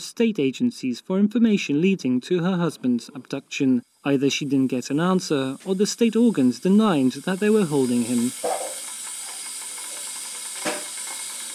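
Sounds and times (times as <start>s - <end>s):
speech: 0.0s - 8.7s
kettle heating water hissing steam: 2.8s - 11.5s.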